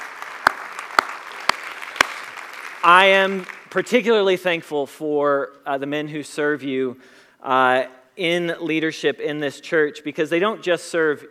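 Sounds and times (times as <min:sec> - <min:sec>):
hand claps from a church congregation: 0:00.0 - 0:03.8
faint steady hiss: 0:00.0 - 0:11.2
speech: 0:02.8 - 0:11.2.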